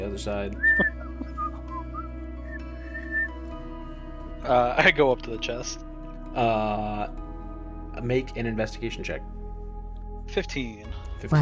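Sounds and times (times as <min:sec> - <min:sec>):
speech: 0:00.0 - 0:01.0, 0:04.4 - 0:07.2, 0:08.0 - 0:09.3, 0:10.3 - 0:11.3
person whistling a short wandering tune: 0:00.6 - 0:03.4.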